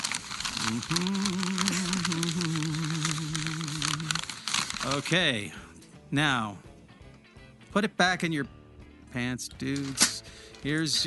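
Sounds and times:
sheet of paper crinkled and unfolded: 0.0s - 5.2s
speech: 0.7s - 2.6s, 4.8s - 6.7s, 7.7s - 10.0s, 10.6s - 11.0s.

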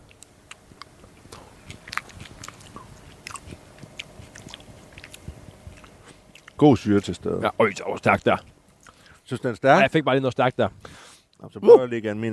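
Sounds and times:
biting and chewing fish with chili: 0.0s - 9.2s
speech: 6.6s - 8.5s, 9.3s - 10.8s, 11.4s - 12.3s.

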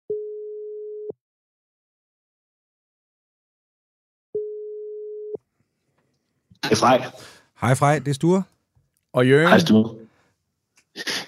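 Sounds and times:
phone ringback tone: 4.4s - 5.4s
speech: 6.6s - 8.5s, 9.2s - 10.0s.

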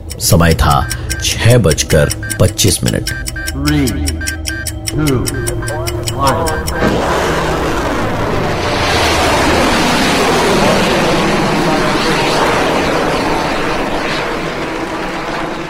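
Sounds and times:
sharp repeated electronic beeps and ticks: 0.0s - 9.7s
speech: 0.2s - 4.4s, 5.0s - 5.5s, 6.2s - 7.2s
loud rocket launch roar: 6.6s - 15.6s.

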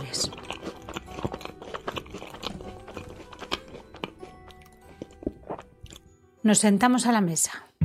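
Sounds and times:
close-miked wet crunchy chewing with bites and smacks: 0.0s - 6.1s
speech: 6.4s - 7.7s.

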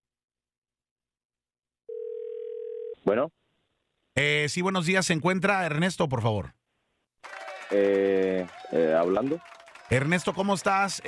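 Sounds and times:
telephone ringing tone on an outgoing call: 1.9s - 3.0s
speech: 3.0s - 3.4s, 4.2s - 6.6s, 7.7s - 11.0s.

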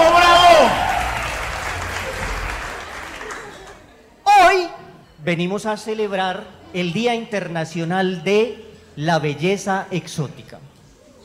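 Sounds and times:
crowd applauding: 0.0s - 3.9s
speech: 5.3s - 10.7s.

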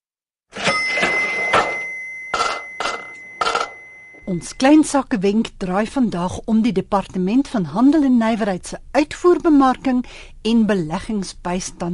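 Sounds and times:
cash register bell ringing: 0.5s - 4.6s
speech: 4.3s - 11.9s.

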